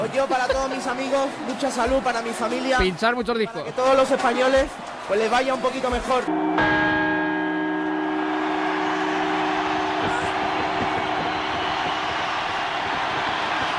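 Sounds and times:
speech: 0.0 - 6.7
church bells chiming at midnight: 6.3 - 12.7
dense wash of broadband noise: 6.3 - 13.7.

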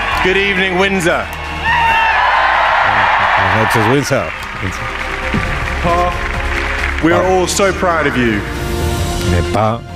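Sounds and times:
large concert crowd cheering and whooping in Windsor: 0.0 - 7.2
speech: 0.2 - 1.4, 3.6 - 6.3, 7.0 - 9.9.

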